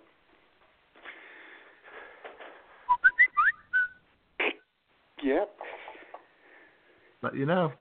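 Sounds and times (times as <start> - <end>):
person whistling short rising notes imitating a watch alarm: 2.9 - 4.0
speech: 5.2 - 5.7, 7.2 - 7.7.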